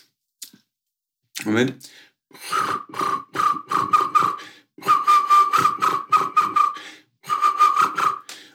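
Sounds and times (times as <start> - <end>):
speech: 1.4 - 3.1
person whistling an imitation of a black woodpecker flight call: 2.4 - 8.4.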